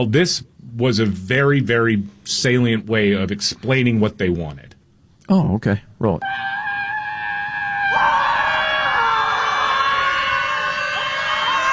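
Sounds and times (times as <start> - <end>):
speech: 0.0 - 4.7, 5.3 - 6.6
crowd of protesters screaming at a scream protest: 6.2 - 11.7.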